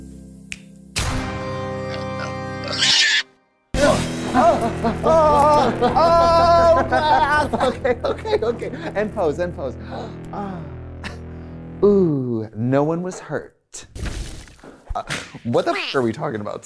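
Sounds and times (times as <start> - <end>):
several voices imitating pig oinks in song: 1.9 - 3.2
laughter: 4.2 - 9.4
speech: 4.4 - 10.8, 11.8 - 13.9, 15.0 - 16.6.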